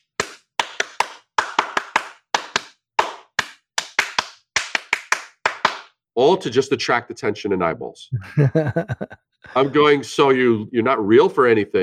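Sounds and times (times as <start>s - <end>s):
single pair of hands clapping: 0.0s - 5.9s
speech: 6.2s - 11.8s
laughter: 8.1s - 11.0s.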